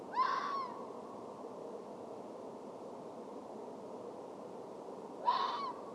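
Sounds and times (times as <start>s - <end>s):
red fox Vulpes vulpes calling: 0.1s - 0.8s, 5.2s - 5.8s.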